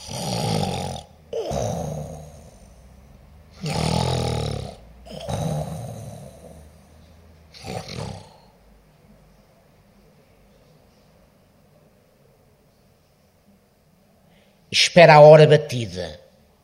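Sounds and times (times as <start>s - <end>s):
person snoring loudly with open mouth: 0.0s - 8.6s
speech: 14.8s - 16.2s.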